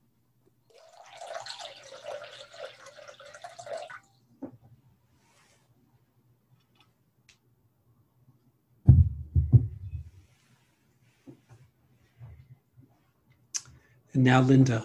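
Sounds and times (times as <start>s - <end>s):
water pouring from a pitcher into a bowl: 0.7s - 4.2s
low thump: 8.9s - 10.0s
speech: 14.2s - 14.8s.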